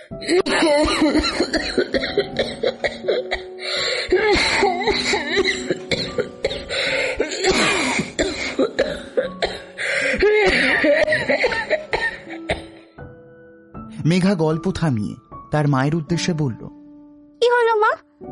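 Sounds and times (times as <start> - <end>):
speech: 0.1 - 2.5, 14.2 - 16.6
woman coughing in harsh chesty fits: 0.2 - 3.5, 4.1 - 12.8
woman gasping: 6.7 - 7.3, 9.8 - 10.7.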